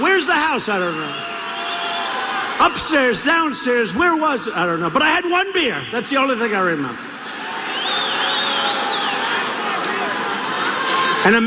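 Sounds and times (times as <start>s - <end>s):
large rally crowd cheering: 0.0s - 11.4s
speech: 0.6s - 1.4s, 2.6s - 7.1s, 11.2s - 11.4s
piercing whistle: 0.8s - 2.2s, 7.7s - 9.2s.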